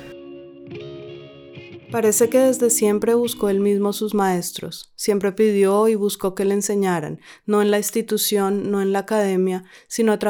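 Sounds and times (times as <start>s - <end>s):
distorted electric guitar strumming sustained chords: 0.0s - 3.4s
speech: 1.9s - 10.2s.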